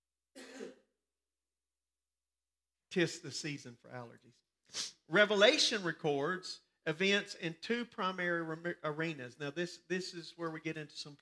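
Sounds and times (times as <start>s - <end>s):
throat clearing: 0.4s - 0.8s
speech: 2.9s - 11.2s.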